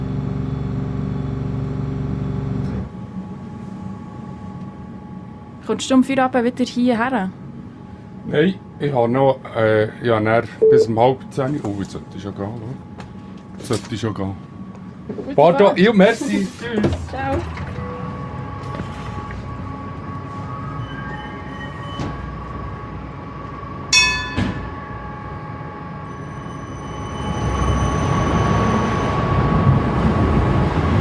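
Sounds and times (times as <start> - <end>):
tram motor and wheel rumble as it pulls away: 0.0 - 9.6, 11.3 - 30.9
speech: 5.7 - 7.4, 8.3 - 12.9, 13.6 - 14.5, 15.1 - 17.6
tram humming at a stop: 17.2 - 30.9
tram bell clang: 23.9 - 25.4.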